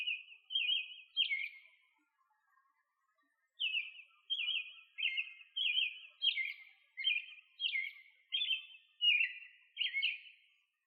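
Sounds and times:
bird chirping: 0.0 - 1.8, 3.6 - 10.4.

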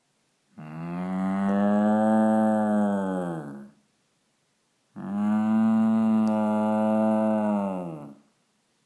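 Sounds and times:
cow noise: 0.6 - 3.8, 5.0 - 8.2.

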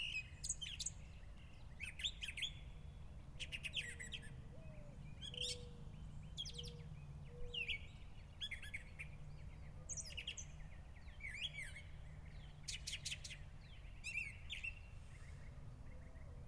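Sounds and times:
mockingbird song in the evening: 0.0 - 16.4.

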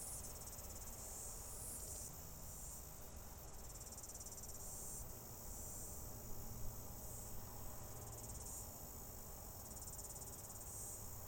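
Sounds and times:
cicadas droning: 0.0 - 11.2.

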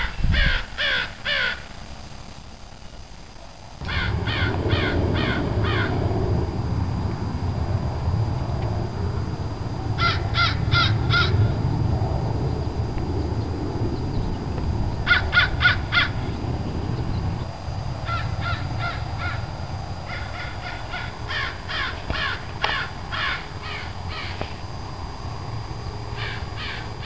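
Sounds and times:
crow cawing: 0.0 - 1.7, 3.8 - 6.0, 10.0 - 11.6, 15.0 - 16.3, 18.0 - 24.5, 26.2 - 27.0
constant low rumble: 3.7 - 27.0.

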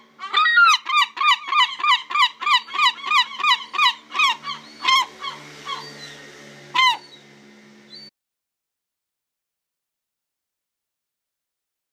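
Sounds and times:
Herring gull yelping calls: 0.0 - 6.2, 6.8 - 7.2
low background hum: 0.0 - 8.1.

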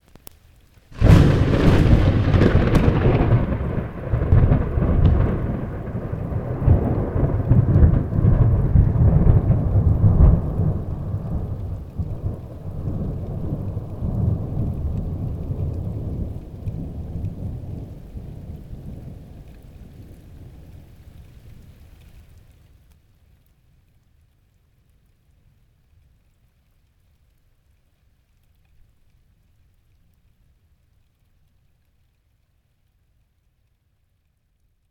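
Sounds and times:
thunder crack with a bit of distortion in an urban area: 1.0 - 19.2.

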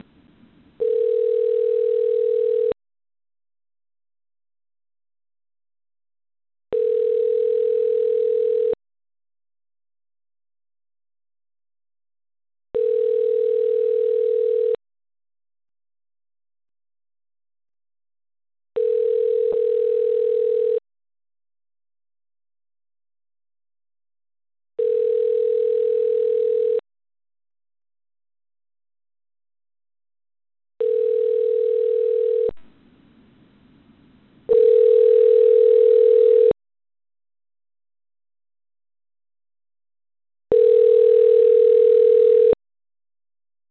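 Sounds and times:
phone call tone: 0.8 - 2.8, 6.7 - 8.8, 12.8 - 14.8, 18.8 - 20.8, 24.8 - 26.8, 30.8 - 32.6, 34.5 - 36.6, 40.5 - 42.6.

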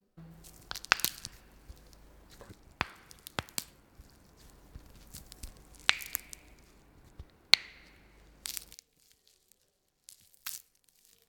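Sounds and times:
bone breaking: 0.4 - 8.8.

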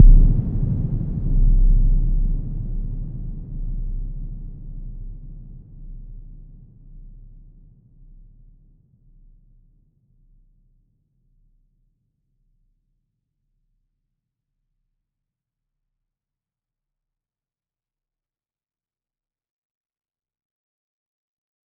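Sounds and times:
cinematic boom: 0.0 - 3.1.

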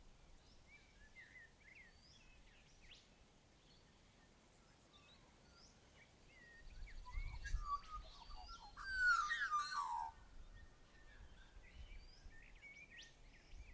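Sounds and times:
Australian magpie song at Tilba: 6.3 - 13.1.

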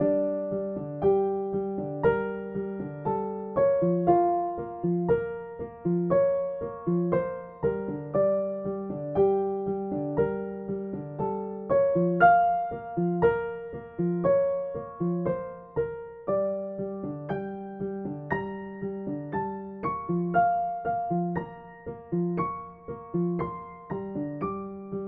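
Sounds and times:
retro piano loop: 0.0 - 25.0.

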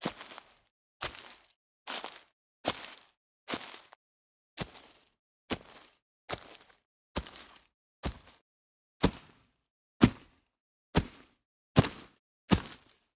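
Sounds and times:
footsteps on leaves: 0.0 - 4.0, 4.6 - 8.4, 12.5 - 13.0.

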